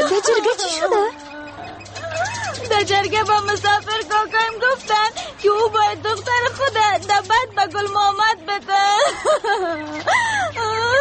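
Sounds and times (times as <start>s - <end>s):
person crying in loud wavering moaning sobs: 0.0s - 2.7s, 8.8s - 10.9s
laughter: 0.0s - 10.9s
speech: 2.7s - 10.9s.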